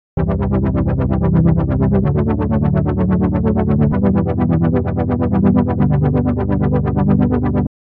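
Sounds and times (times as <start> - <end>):
low frequency oscillator: 0.2 - 7.7.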